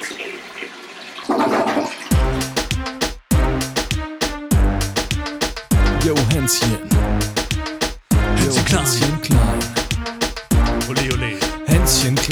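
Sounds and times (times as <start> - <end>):
toilet flushing: 0.0 - 2.5
rhythmic tonal bursts: 2.1 - 12.3
speech: 6.1 - 7.3, 8.7 - 9.7.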